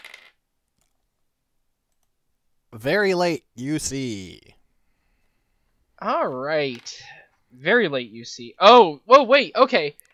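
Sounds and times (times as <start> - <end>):
dice tumbling across a hard surface: 0.0 - 1.0
speech: 2.8 - 4.6, 6.0 - 10.0.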